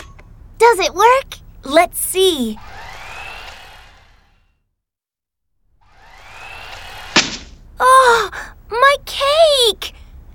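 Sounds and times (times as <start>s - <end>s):
speech: 0.6s - 2.8s, 7.8s - 10.0s
remote control toy car slamming into something: 7.1s - 7.6s.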